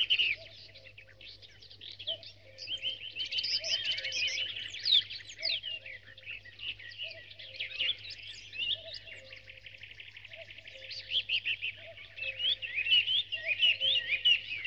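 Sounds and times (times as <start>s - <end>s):
birds in a dawn chorus chirping, trilling and warbling: 0.0s - 14.6s.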